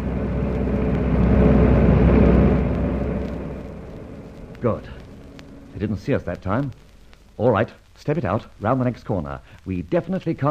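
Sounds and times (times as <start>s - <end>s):
car engine and tyre roar driving past: 0.0s - 5.8s
speech: 4.6s - 5.0s, 5.8s - 10.4s.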